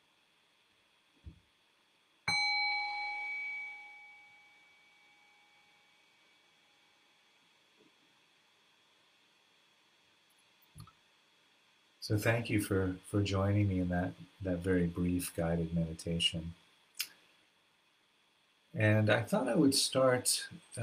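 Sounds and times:
meditation bell struck at the end of a guided meditation: 2.3s - 5.9s
speech: 12.0s - 16.6s, 18.8s - 20.8s.

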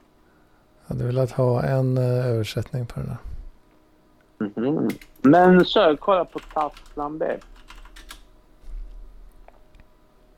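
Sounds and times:
speech: 0.9s - 3.3s, 4.6s - 7.5s
typing on a computer keyboard: 4.9s - 8.3s.

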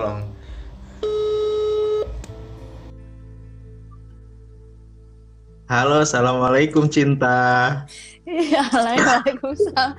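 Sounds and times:
speech: 0.0s - 0.4s, 5.7s - 9.9s
telephone ringback tone while a call connects: 1.0s - 2.1s.

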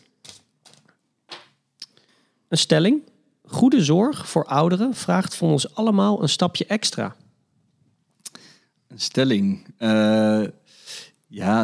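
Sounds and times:
discussion cards being shuffled: 0.0s - 1.5s
speech: 2.5s - 7.2s, 9.0s - 11.6s.

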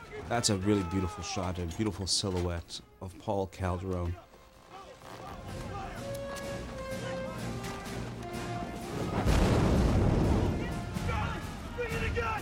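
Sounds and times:
speech: 0.3s - 4.3s
sustained tonal film music score: 5.4s - 12.4s
makeshift howitzer firing heavy boom with rumbling tail: 8.9s - 11.1s.

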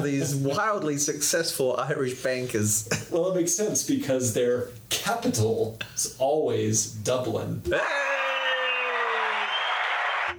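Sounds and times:
speech: 0.0s - 8.1s
huge football stadium crowd roaring: 7.8s - 10.3s
stadium crowd clapping: 8.1s - 10.3s.

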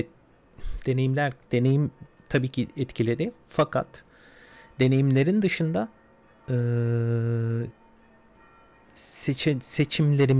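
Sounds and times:
speech: 0.0s - 4.1s, 4.8s - 7.8s, 9.0s - 10.3s
faint noise: 0.0s - 10.3s
church bells ringing: 2.1s - 10.3s.

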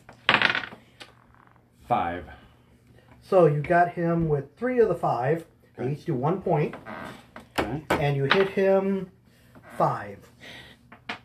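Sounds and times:
two dice clattering across a hard tabletop in a tabletop game: 0.1s - 0.8s
speech: 1.9s - 2.4s, 3.2s - 7.0s, 7.7s - 9.2s, 9.8s - 10.6s.

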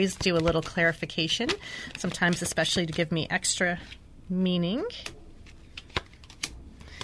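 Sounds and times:
Lenormand card deck being handled and shuffled: 0.0s - 3.2s, 5.0s - 7.0s
speech: 0.0s - 5.2s.

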